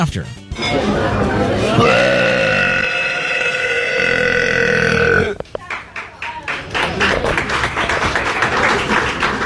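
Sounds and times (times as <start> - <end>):
speech: 0.0 - 2.0
crowd chatter: 0.5 - 9.4
long loud drawn-out burp after carbonated drink: 1.7 - 5.4
crowd clapping: 5.4 - 9.4.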